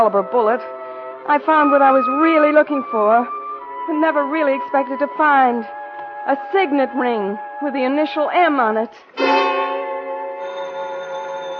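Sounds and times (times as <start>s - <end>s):
speech: 0.0s - 9.5s
telephone bell ringing: 9.2s - 11.5s.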